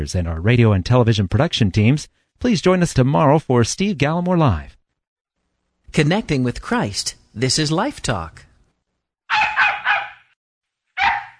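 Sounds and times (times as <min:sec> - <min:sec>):
speech: 0:00.0 - 0:04.8, 0:05.9 - 0:08.5
dog barking: 0:09.3 - 0:10.4, 0:11.0 - 0:11.3.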